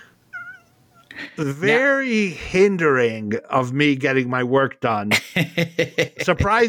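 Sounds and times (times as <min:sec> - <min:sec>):
domestic cat meowing: 0:00.3 - 0:00.7
speech: 0:01.4 - 0:06.6
laughter: 0:05.1 - 0:06.6.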